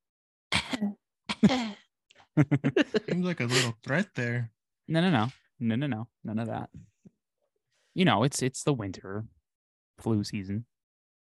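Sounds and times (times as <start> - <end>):
person mimicking short throaty coughs: 0.5 - 1.7
speech: 0.8 - 1.8, 2.4 - 6.9, 8.0 - 9.4, 10.0 - 10.7
laughter: 2.4 - 4.4.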